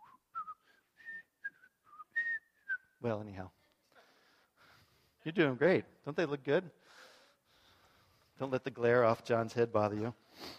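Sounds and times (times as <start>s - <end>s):
person whistling a tune on stage: 0.0s - 3.0s
speech: 3.0s - 3.6s, 5.2s - 7.1s, 8.4s - 10.5s.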